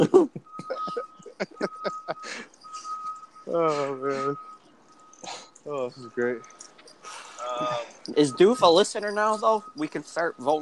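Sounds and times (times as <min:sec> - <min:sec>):
voiced laughter: 0:00.0 - 0:02.4
whistled tone mimicking an 18-wheeler truck's reversing beeps: 0:00.4 - 0:10.6
speech: 0:05.9 - 0:06.7, 0:07.6 - 0:10.6.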